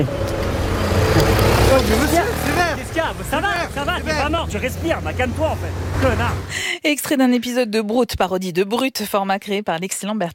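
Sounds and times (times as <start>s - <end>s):
vehicles droning past: 0.0s - 6.6s
low engine rumble of road traffic: 0.0s - 6.7s
speech: 1.8s - 10.3s.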